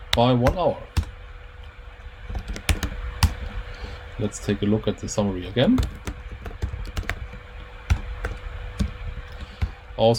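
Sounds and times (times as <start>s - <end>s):
speech: 0.2s - 1.0s, 4.2s - 6.1s, 10.0s - 10.1s
typing on a computer keyboard while entering text into software: 2.3s - 3.4s, 5.7s - 9.5s.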